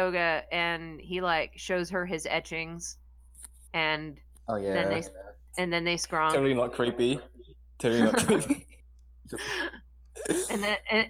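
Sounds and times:
speech: 0.0 - 3.0, 3.7 - 11.0
laughter: 7.9 - 8.7
short rough throat clearing: 10.2 - 10.7.

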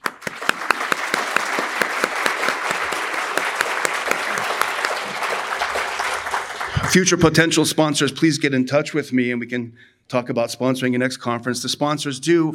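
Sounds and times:
audience applause: 0.0 - 7.3
speech: 6.9 - 12.5.

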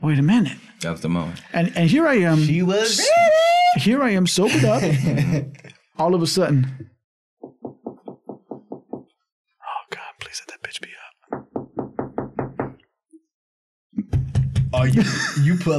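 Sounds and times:
speech: 0.0 - 6.9, 14.8 - 15.7
laughter: 1.8 - 5.7, 14.8 - 15.7
loud knocking on a door: 7.4 - 9.1, 11.3 - 12.8
person whispering: 9.6 - 11.1.

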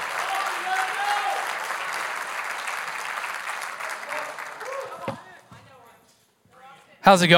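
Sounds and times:
scattered whoops and cheers: 0.0 - 1.6, 3.9 - 5.3
crowd applauding: 0.0 - 5.5
speech: 7.1 - 7.3.

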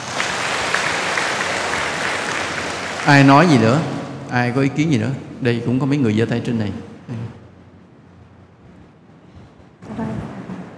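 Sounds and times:
crowd clapping: 0.0 - 4.3
speech: 3.1 - 7.4.

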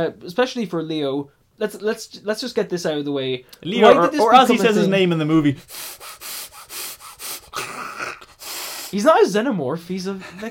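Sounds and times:
speech: 0.0 - 6.3, 8.9 - 10.4
voice imitating heavy breathing through clenched teeth: 5.6 - 9.0.

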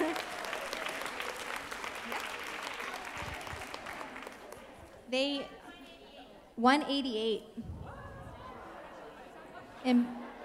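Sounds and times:
applause for the winning table at a contest: 0.0 - 4.8
speech: 5.1 - 5.6, 6.6 - 7.7, 9.8 - 10.2.

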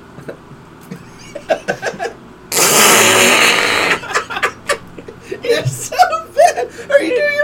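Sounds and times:
laughter: 0.9 - 2.2, 3.8 - 7.4
short sputtering smacks of licked hands: 2.5 - 4.0
fake fart noise made by squeezing licked hands together: 2.5 - 4.2.

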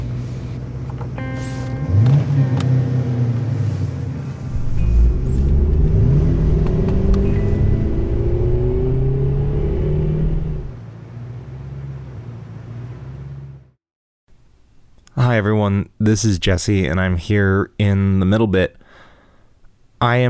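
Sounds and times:
car engine starting and revving: 0.0 - 13.8
speech: 15.4 - 18.8, 20.0 - 20.2.

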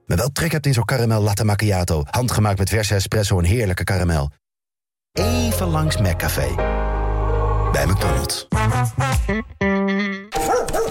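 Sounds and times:
speech: 0.1 - 4.4, 5.2 - 6.8, 7.7 - 9.7
dog barking: 10.4 - 10.8.

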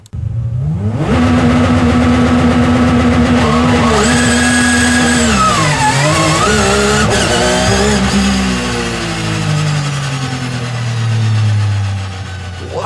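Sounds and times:
race car tire noise during a burnout: 0.0 - 12.8
race car engine revving at high revs during a burnout: 0.1 - 12.8.

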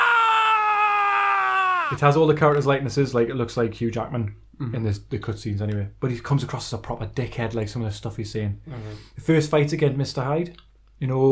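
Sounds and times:
high-pitched scream from a PlayStation 2 video game as a stake comes down: 0.0 - 2.0
speech: 1.9 - 11.3.

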